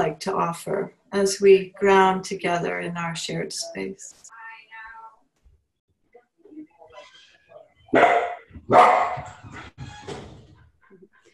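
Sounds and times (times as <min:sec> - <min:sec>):
speech: 0:00.0 - 0:04.4, 0:07.9 - 0:10.2
soft voice: 0:00.0 - 0:05.2, 0:06.0 - 0:07.9
dog barking loudly: 0:07.9 - 0:09.4.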